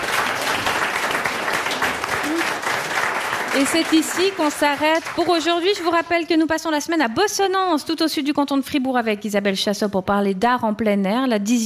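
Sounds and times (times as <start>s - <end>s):
audience applause: 0.0s - 6.0s
speech: 3.6s - 11.6s.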